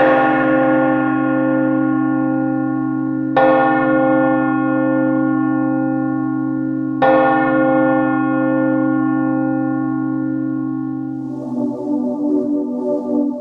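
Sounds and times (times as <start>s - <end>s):
large deep bell tolling: 0.0s - 13.2s.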